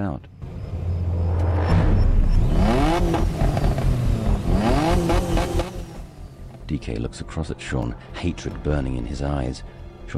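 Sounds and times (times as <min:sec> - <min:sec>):
speech: 0:00.0 - 0:00.3, 0:06.7 - 0:10.1
sports car engines revving hard at a start line at night: 0:00.4 - 0:06.7.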